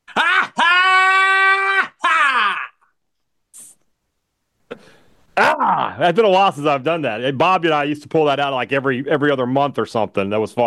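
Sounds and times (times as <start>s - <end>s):
person screaming: 0.1s - 2.9s, 5.4s - 6.0s
speech: 6.0s - 10.6s.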